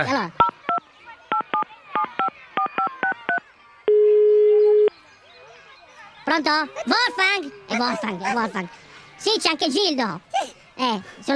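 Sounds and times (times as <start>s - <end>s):
speech: 0.0s - 0.5s, 6.3s - 11.3s
faint noise: 0.0s - 11.3s
steady telephone tone: 3.9s - 4.9s.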